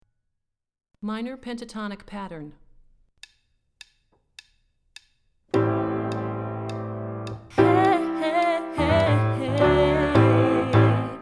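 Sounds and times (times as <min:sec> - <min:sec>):
low minor pentatonic pattern warmup: 0:05.6 - 0:11.1.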